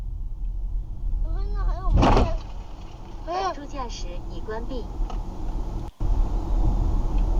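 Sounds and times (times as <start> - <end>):
road rumble inside a moving car: 0.0 - 7.3
car brakes being applied: 1.5 - 7.3
car colliding in a crash: 1.9 - 3.5.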